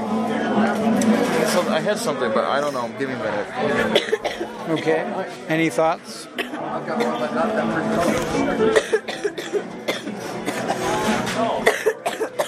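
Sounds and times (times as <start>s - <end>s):
murmur of room chatter and voices: 0.0s - 12.4s
speech: 1.6s - 9.1s
person coughing: 3.9s - 4.9s, 8.8s - 10.8s, 11.6s - 12.4s.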